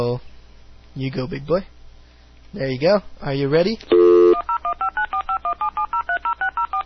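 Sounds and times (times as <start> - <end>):
speech: 0.0 - 0.3, 1.0 - 1.8, 2.5 - 4.0
telephone keypad tones dialing a phone call: 3.9 - 6.8.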